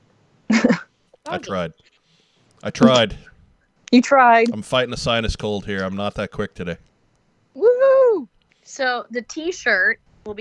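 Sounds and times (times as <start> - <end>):
speech: 0.6 - 1.9, 2.6 - 3.3, 3.9 - 6.9, 8.7 - 10.4
person imitating a dog barking: 2.8 - 3.1.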